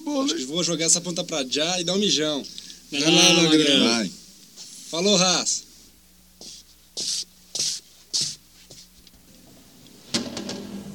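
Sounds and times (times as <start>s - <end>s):
speech: 0.1s - 4.2s, 4.9s - 5.7s
door shutting with a clunk and ringing rattle: 10.1s - 10.9s.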